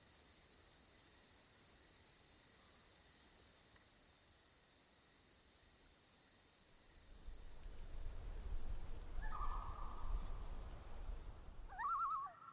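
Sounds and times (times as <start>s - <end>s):
steady high insect drone in a bog: 0.0s - 11.8s
short warbling bird call: 9.2s - 10.5s, 11.7s - 12.5s.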